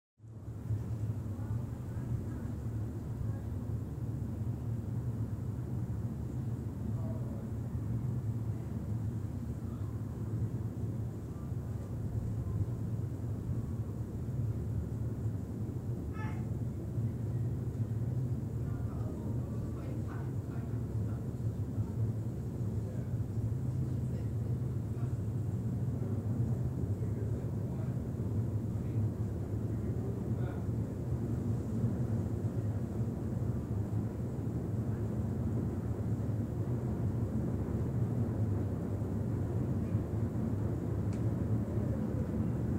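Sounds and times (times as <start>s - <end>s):
pier train: 0.2s - 42.7s
voices on a pier train: 0.8s - 42.7s.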